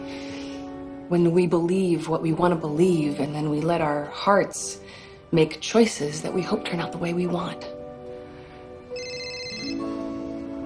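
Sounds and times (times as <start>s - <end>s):
speech: 1.1s - 7.8s
woman's phone ringing with a bright electronic ringtone: 8.9s - 10.4s.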